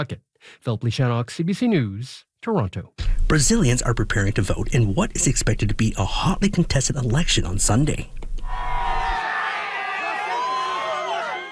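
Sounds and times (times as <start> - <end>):
speech: 0.0 - 8.7
large crowd cheering and shouting at a political rally: 8.6 - 11.4.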